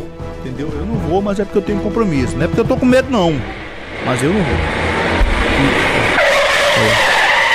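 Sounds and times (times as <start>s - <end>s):
low engine rumble: 0.3s - 7.5s
speech: 0.4s - 5.0s, 5.6s - 6.2s, 6.8s - 7.2s
car tires screeching while skidding: 2.7s - 7.5s.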